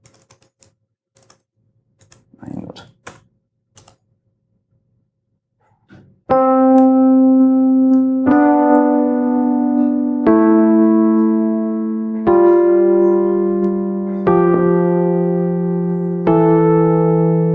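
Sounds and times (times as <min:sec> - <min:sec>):
chromatic scale played as a music-software example: 0:06.4 - 0:17.5.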